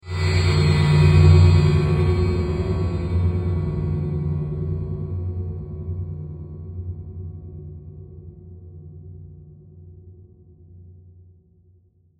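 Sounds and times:
dark robotic metallic swell with reverb: 0.0s - 5.2s.

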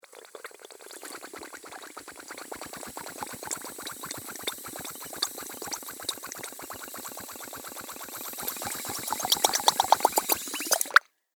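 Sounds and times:
potion boiling in a laboratory beaker: 0.0s - 11.0s.

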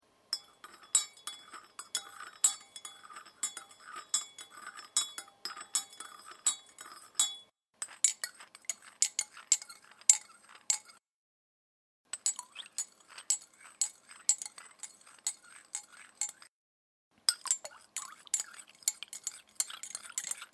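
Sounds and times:
teaspoon stirring a cup of tea: 0.3s - 11.0s, 12.1s - 16.5s, 17.2s - 20.5s.

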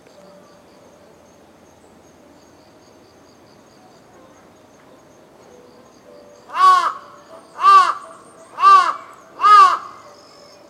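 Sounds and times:
crow cawing in Tokyo Japan: 6.5s - 10.0s.

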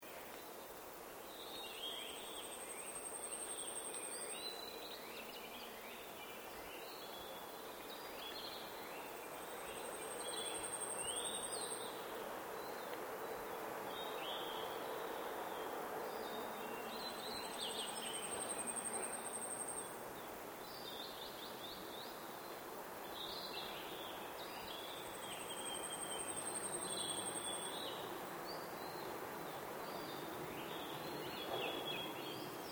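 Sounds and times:
forest birds at Tazawako in Japan: 0.0s - 32.7s.

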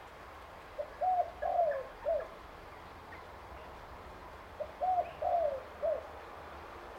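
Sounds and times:
spotted dove cooing: 0.8s - 2.4s, 4.6s - 6.1s.

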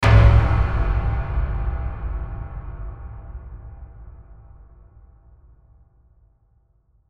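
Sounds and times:
metallic hit impact with reverb: 0.0s - 4.8s.

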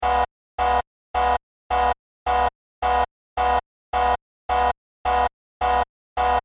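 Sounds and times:
industrial sci-fi warning horn in a control room: 0.0s - 6.4s.

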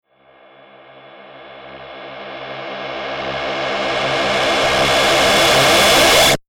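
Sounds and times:
reversed distorted long evil robot sci-fi space metal machine sound: 1.2s - 6.4s.

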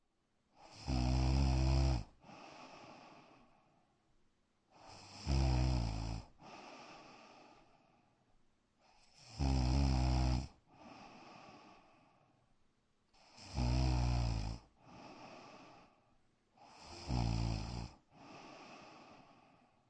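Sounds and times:
woman snoring in bedroom: 0.6s - 3.3s, 4.8s - 7.6s, 9.0s - 11.9s, 13.2s - 15.9s, 16.6s - 19.6s.

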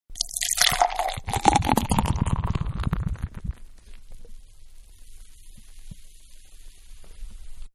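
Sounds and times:
beer pouring from a can into a glass: 0.2s - 3.5s.

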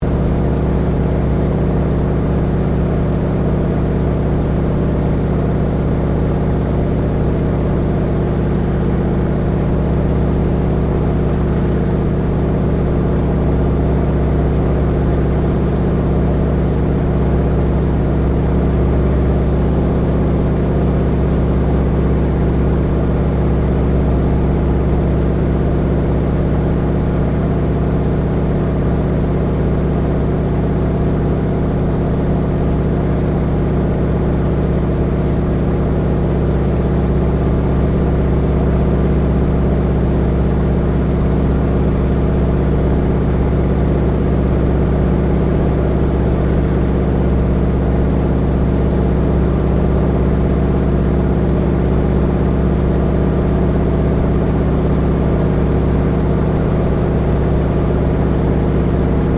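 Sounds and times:
1939 Boeing PT-17 Stearman trainer aircraft flying a loop, heard from the interior: 0.0s - 59.3s.

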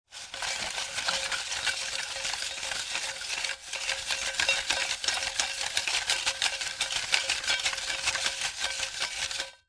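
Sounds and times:
paper tickets spinning in metal pot lottery drum: 0.1s - 9.6s.

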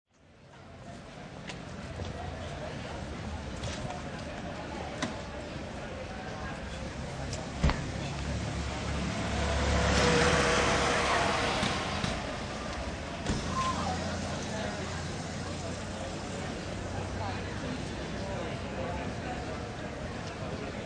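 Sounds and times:
light sparse evening crowd in a city restaurant area: 0.2s - 20.8s
car in a city restaurant area: 7.1s - 18.6s.

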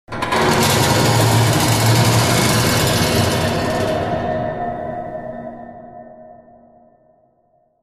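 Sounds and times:
scraping along the bars of a metal cage with atmospheric echo: 0.2s - 4.1s.

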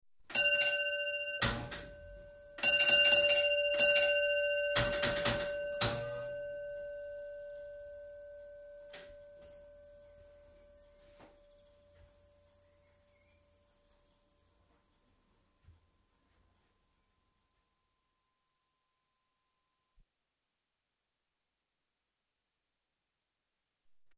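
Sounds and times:
railway signalling equipment advance warning of train: 0.3s - 12.6s.

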